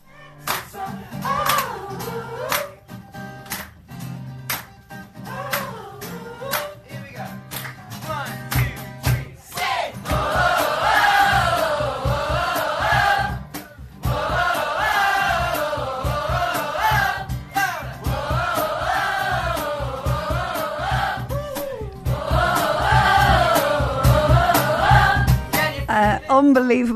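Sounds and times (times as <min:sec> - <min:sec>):
packed room of people singing along to a live song: 0:00.0 - 0:02.9, 0:05.2 - 0:06.8, 0:08.9 - 0:26.1
scattered clapping: 0:00.4 - 0:25.7
rhythmic thumps: 0:07.0 - 0:26.5
speech: 0:26.5 - 0:26.9.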